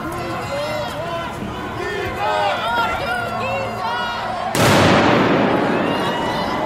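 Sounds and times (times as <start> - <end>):
crowd chattering and shouting at street protest: 0.0 - 6.6
loud firework blast at street protest: 4.6 - 6.6.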